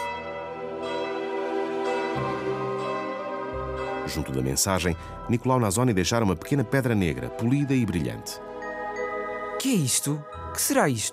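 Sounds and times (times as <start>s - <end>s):
church bells pealing: 0.0s - 11.1s
speech: 4.1s - 8.5s, 9.6s - 11.1s.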